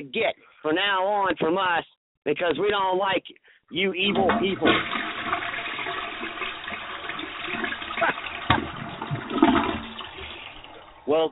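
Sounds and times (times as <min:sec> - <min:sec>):
speech: 0:00.0 - 0:05.5, 0:11.1 - 0:11.3
toilet flushing: 0:04.0 - 0:11.3.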